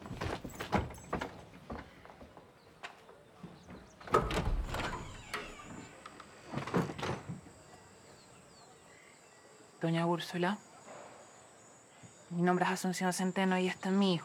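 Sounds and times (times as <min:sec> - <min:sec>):
door being opened with scraping thuds and clunks: 0:03.7 - 0:07.4
speech: 0:09.8 - 0:10.7, 0:12.4 - 0:14.2.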